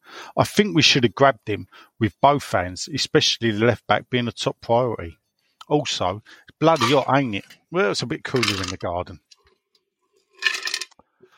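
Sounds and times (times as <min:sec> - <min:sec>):
speech: 0:00.4 - 0:09.2
ice cubes clinking and rattling against a drink glass: 0:10.3 - 0:11.0.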